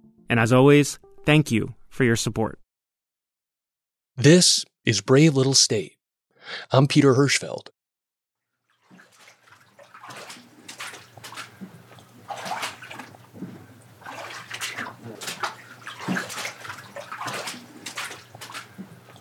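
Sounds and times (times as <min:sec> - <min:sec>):
speech: 0:00.3 - 0:02.6, 0:04.2 - 0:07.8
feet wading through ankle-high floodwater: 0:08.7 - 0:19.1.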